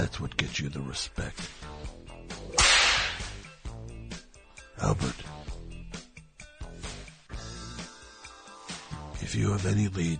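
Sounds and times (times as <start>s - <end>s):
speech: 0.2s - 1.9s, 4.8s - 5.4s, 9.3s - 10.1s
whip crack: 2.5s - 3.5s.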